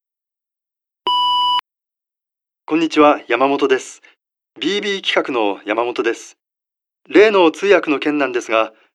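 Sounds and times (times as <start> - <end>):
answering machine electronic beep: 1.1 - 1.6
speech: 2.7 - 6.4, 7.0 - 8.8.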